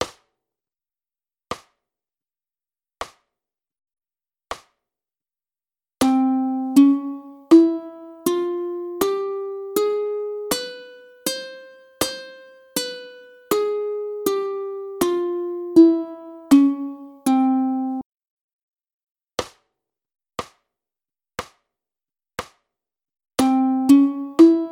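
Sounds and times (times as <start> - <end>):
ukulele playing gypsy major scales: 6.0 - 18.0, 23.4 - 24.6.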